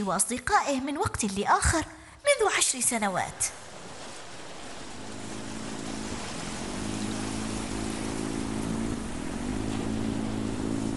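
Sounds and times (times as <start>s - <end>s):
speech: 0.0s - 3.8s
motorboat engine droning while cutting through water: 3.6s - 10.9s.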